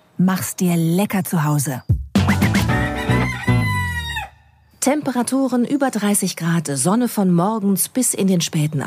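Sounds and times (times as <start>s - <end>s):
speech: 0.2s - 1.9s, 4.9s - 8.8s
rooster crowing: 2.7s - 4.6s.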